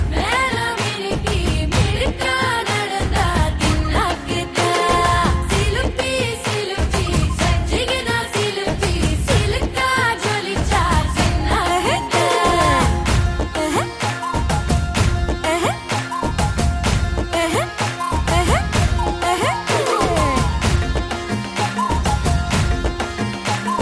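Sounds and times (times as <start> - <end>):
Tamil song: 0.1 - 23.8.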